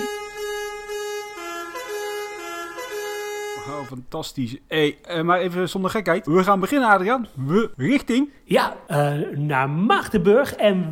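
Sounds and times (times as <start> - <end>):
vehicle horn blaring: 0.0 - 3.9
speech: 3.7 - 10.8.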